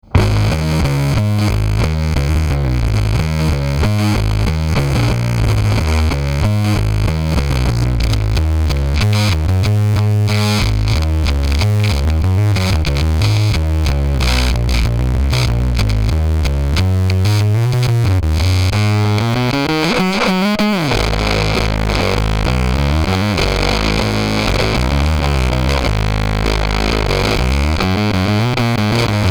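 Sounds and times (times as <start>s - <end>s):
fuzz pedal bass with tone sweeping: 0.0s - 29.2s.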